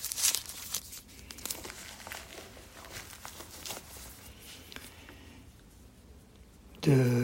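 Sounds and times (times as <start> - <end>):
small plastic bag packaging a mobile phone battery crinkling: 0.0 - 5.2
speech: 6.8 - 7.2.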